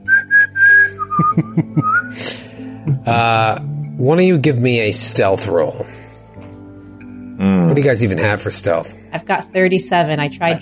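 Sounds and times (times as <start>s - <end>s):
person whistling loudly: 0.0s - 2.2s
laughter: 1.1s - 3.4s
speech: 1.2s - 6.0s, 7.7s - 10.5s.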